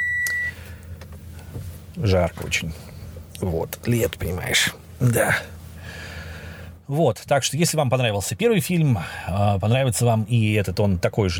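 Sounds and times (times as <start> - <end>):
steady high electronic beep as the car is switched off: 0.0 - 0.6
low car engine rumble: 0.0 - 10.6
speech: 2.0 - 6.0, 6.9 - 11.3.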